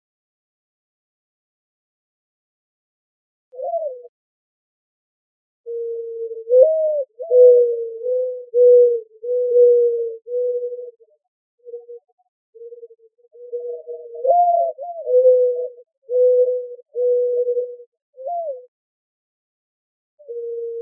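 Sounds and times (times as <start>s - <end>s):
mourning dove cooing in Arizona: 3.6s - 4.1s, 5.7s - 18.7s, 20.2s - 20.8s.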